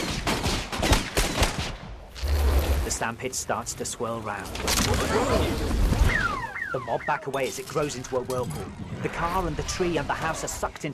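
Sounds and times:
police gunfire riddling a sand pit with bullets: 0:00.0 - 0:01.8
speech: 0:03.0 - 0:06.0, 0:06.7 - 0:10.9.

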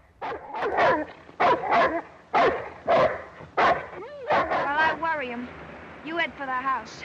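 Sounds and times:
tethered guard dog barking aggressively in a muddy yard: 0:00.2 - 0:05.0
speech: 0:05.4 - 0:07.0.

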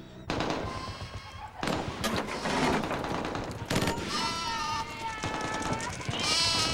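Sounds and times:
bursts of gunfire: 0:00.3 - 0:06.7
flock of sheep trotting past a building bleating: 0:03.9 - 0:06.7.

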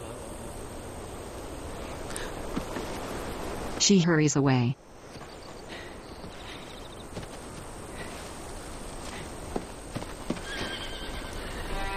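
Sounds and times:
quiet hiss: 0:00.0 - 0:11.9
speech: 0:03.8 - 0:04.8
black horse whinnying while grazing on a hill: 0:10.3 - 0:11.7.

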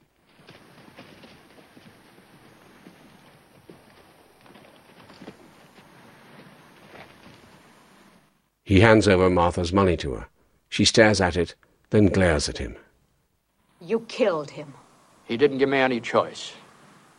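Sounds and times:
horse walking with hooves clip-clopping: 0:00.0 - 0:08.2
constant hiss: 0:00.0 - 0:17.1
speech: 0:08.7 - 0:12.8, 0:13.9 - 0:16.6.

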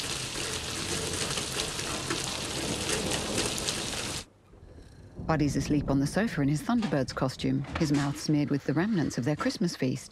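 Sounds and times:
heavy rain pouring in a back alley: 0:00.0 - 0:04.3
speech: 0:05.3 - 0:10.1.

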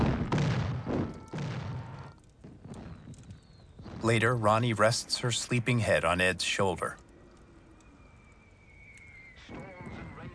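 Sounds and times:
bombs exploding on a television broadcast: 0:00.0 - 0:05.0
speech: 0:04.0 - 0:07.0.

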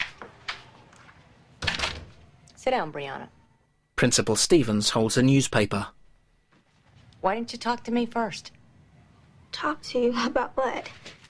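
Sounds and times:
door thudding shut: 0:01.6 - 0:02.2
speech: 0:02.6 - 0:03.4, 0:04.0 - 0:06.0, 0:07.2 - 0:08.6, 0:09.5 - 0:11.2.

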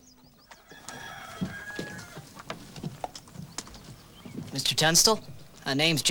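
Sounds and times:
chickens clucking and squawking in a barnyard: 0:00.0 - 0:05.9
hoof-like clops: 0:00.5 - 0:06.0
rooster-like crow: 0:00.6 - 0:02.3
speech: 0:04.6 - 0:06.0.

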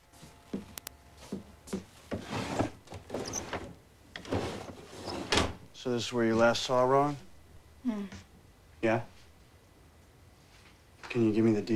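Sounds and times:
wooden drawers sliding open in a bedroom: 0:02.1 - 0:05.7
speech: 0:05.8 - 0:09.1, 0:11.1 - 0:11.7.

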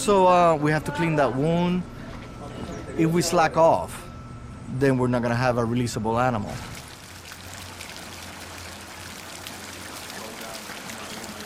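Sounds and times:
speech: 0:00.0 - 0:01.9, 0:03.0 - 0:04.0, 0:04.7 - 0:06.7
water jet filling a pool: 0:06.4 - 0:11.4.

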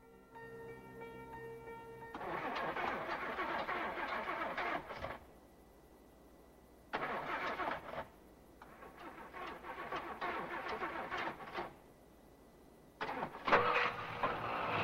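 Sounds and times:
faint steady hum: 0:00.0 - 0:02.2, 0:04.8 - 0:07.2, 0:08.0 - 0:10.6, 0:11.6 - 0:14.8
car engine cranking and starting in a field: 0:02.1 - 0:05.3, 0:06.9 - 0:11.8, 0:13.0 - 0:14.8.

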